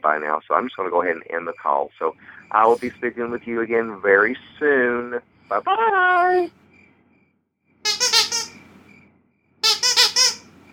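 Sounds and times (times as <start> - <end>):
speech: 0.0 - 6.6
cat squeaking: 7.9 - 8.6, 9.6 - 10.5.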